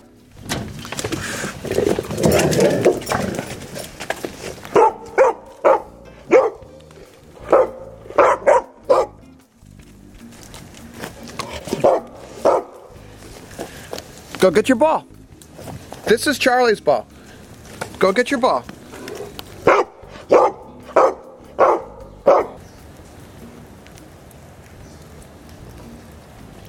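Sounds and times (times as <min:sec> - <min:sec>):
low rustling noise: 0:00.0 - 0:26.6
Labrador dogs barking: 0:02.1 - 0:09.3, 0:11.3 - 0:13.0, 0:18.9 - 0:22.6
speech: 0:14.5 - 0:15.1, 0:16.1 - 0:17.1, 0:18.0 - 0:18.7.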